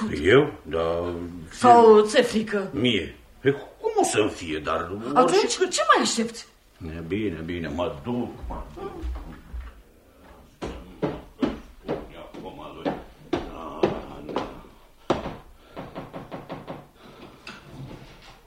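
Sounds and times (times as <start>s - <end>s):
speech: 0.1s - 9.2s
sharp wooden knocks and clatters of a door opening: 10.6s - 18.4s.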